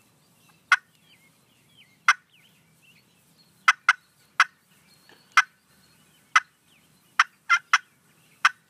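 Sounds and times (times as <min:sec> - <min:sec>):
faint birdsong: 0:00.0 - 0:08.6
turkey clucks from a handheld turkey call: 0:00.7 - 0:01.0, 0:02.0 - 0:02.3, 0:03.6 - 0:04.6, 0:05.3 - 0:05.6, 0:06.3 - 0:06.6, 0:07.2 - 0:08.6.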